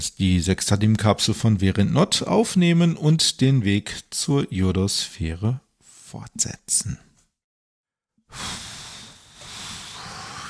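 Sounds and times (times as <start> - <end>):
speech: 0.0 - 7.1, 8.3 - 8.6
loud exhale of heavy huffing breath: 8.3 - 10.4.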